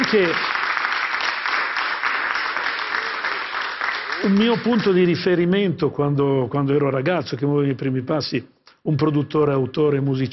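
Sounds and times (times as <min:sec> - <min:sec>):
audience applause: 0:00.0 - 0:05.3
speech: 0:00.1 - 0:00.5, 0:04.2 - 0:10.3.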